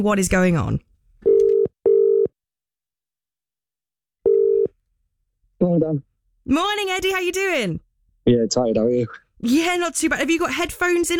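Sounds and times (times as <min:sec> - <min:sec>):
speech: 0:00.0 - 0:00.9, 0:05.7 - 0:11.1
telephone ringing tone while placing a call: 0:01.2 - 0:02.3, 0:04.2 - 0:04.7.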